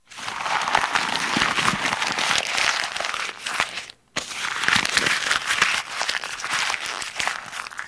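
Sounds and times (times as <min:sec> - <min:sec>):
paper crumpling in an office: 0:00.0 - 0:07.8.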